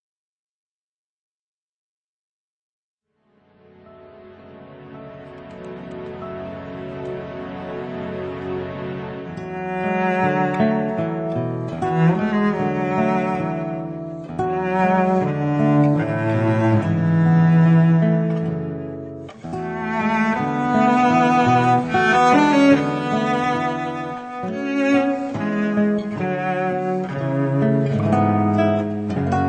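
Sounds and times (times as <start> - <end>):
cello: 3.3 - 29.4
guitar: 3.6 - 29.4.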